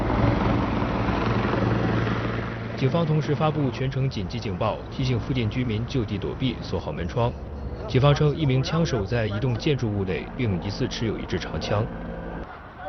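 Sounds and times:
police helicopter hovering overhead: 0.0 - 12.4.

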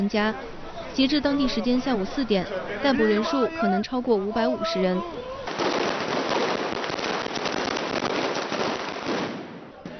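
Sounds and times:
speech: 0.0 - 5.7
firecrackers popping at a street protest: 5.5 - 9.8.

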